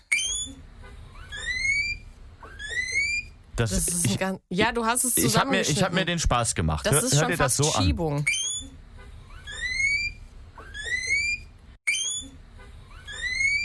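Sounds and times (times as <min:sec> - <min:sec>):
guinea pig wheeking with rising high-pitched whistle-like squeals: 0:00.0 - 0:03.4, 0:08.2 - 0:13.6
speech: 0:03.6 - 0:08.6.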